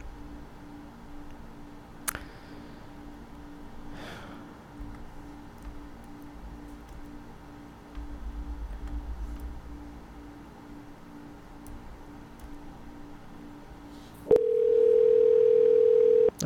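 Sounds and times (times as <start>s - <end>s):
telephone ringing tone over the line: 14.3s - 16.4s.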